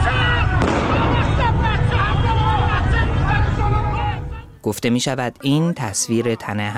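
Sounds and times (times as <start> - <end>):
people shouting in a crowd: 0.0 - 4.4
loud dense crowd of agitated voices: 0.0 - 4.6
gunshot fired by security forces in Narmak Tehran Iran: 0.6 - 1.7
speech: 4.6 - 6.7.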